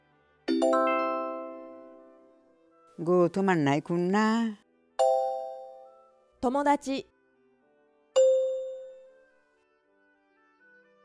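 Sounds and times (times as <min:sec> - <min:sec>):
bright two-tone chime as an answer prompt in a language lesson: 0:00.5 - 0:02.1, 0:05.0 - 0:06.0, 0:08.2 - 0:09.1
speech: 0:03.0 - 0:04.6, 0:06.4 - 0:07.1.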